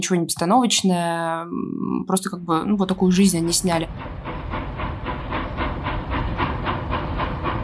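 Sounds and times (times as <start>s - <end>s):
speech: 0.0s - 4.3s
low rumbling rattle of steam train: 2.9s - 7.6s
steam locomotive chuffing at a station: 3.0s - 7.6s.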